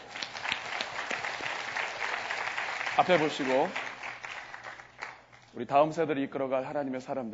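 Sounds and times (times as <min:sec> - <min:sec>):
crowd applauding: 0:00.0 - 0:05.5
speech: 0:03.0 - 0:03.8, 0:05.6 - 0:07.3.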